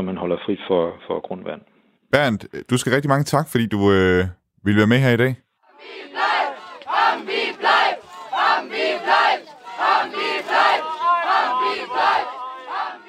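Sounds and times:
speech: 0.0s - 6.2s
crowd of protesters chanting in unison: 5.6s - 13.0s.

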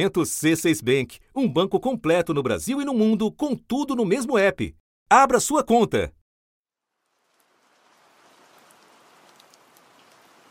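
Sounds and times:
speech: 0.0s - 6.2s
steady dense rain falling: 6.8s - 10.4s.

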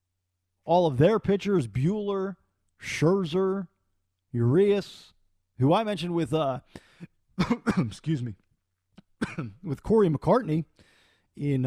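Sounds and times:
speech: 0.7s - 3.7s, 4.3s - 8.4s, 9.2s - 11.6s
person coughing in raspy bursts: 7.4s - 8.1s, 9.2s - 9.7s.

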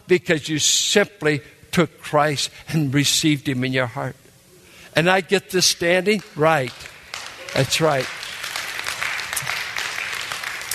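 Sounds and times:
speech: 0.1s - 4.2s, 4.9s - 7.0s, 7.6s - 8.2s
applause from a sizable crowd: 6.5s - 10.7s.

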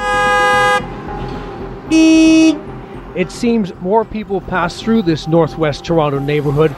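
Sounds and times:
car horn blasts at a Northwest Toronto intersection: 0.0s - 0.9s, 1.9s - 2.7s
heavy road traffic rumble at Wilson Heights Boulevard and Shepherd Avenue intersection: 0.0s - 6.7s
speech: 1.9s - 2.6s, 3.2s - 6.7s.

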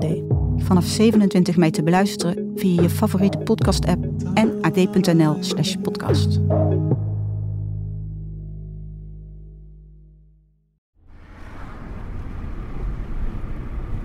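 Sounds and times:
speech: 0.0s - 7.0s
car driving through wooded landscape on a sunny day: 11.0s - 14.0s
steady broadband rumble of car engine and tyres: 11.0s - 14.0s.

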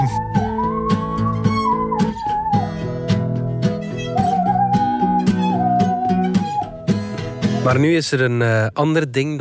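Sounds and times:
singing saw playing a wavering melody: 0.0s - 7.0s
backing chords and light percussion: 0.0s - 7.8s
speech: 7.7s - 9.3s.

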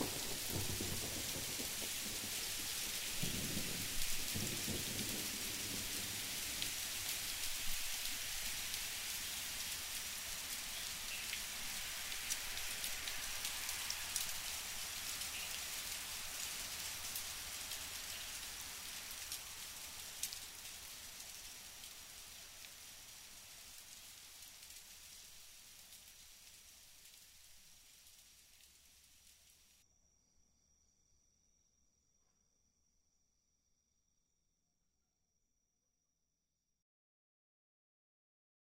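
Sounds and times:
heavy rain pouring in a thunderstorm: 0.0s - 27.2s.

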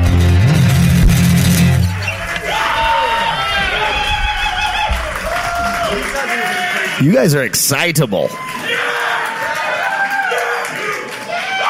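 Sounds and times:
large live crowd cheering: 0.6s - 11.6s
whoops and shouts: 2.4s - 6.0s, 8.3s - 11.6s
speech: 7.0s - 8.6s.

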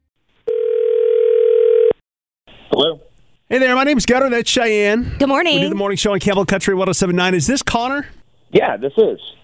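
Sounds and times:
steady loud telephone tone: 0.5s - 2.0s
speech: 3.5s - 9.4s.

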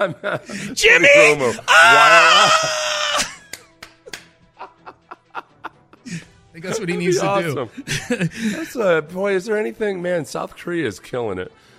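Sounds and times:
speech: 0.0s - 3.3s, 6.6s - 11.7s
laughter: 0.0s - 3.6s, 4.6s - 8.8s
person screaming excitedly: 0.6s - 3.4s.

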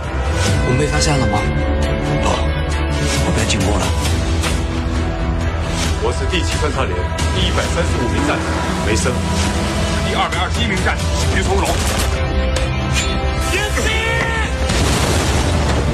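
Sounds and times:
loud dense layered action movie trailer soundtrack: 0.0s - 15.9s
speech: 0.8s - 1.9s, 3.2s - 4.3s, 6.0s - 12.7s
booms and explosions from an action movie trailer: 14.6s - 15.9s.

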